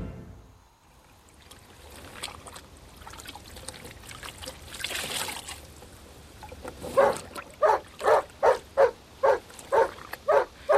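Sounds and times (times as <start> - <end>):
low trickling noise: 0.4 - 10.7
tame dog barking: 6.9 - 10.7.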